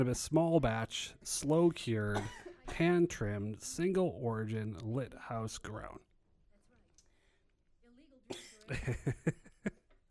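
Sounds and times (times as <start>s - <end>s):
speech: 0.0s - 6.1s, 8.3s - 9.8s
stifled throaty coughing after a big bong hit: 2.1s - 2.8s, 8.3s - 8.9s
quiet breathing: 7.0s - 7.8s
laughter: 8.6s - 9.9s.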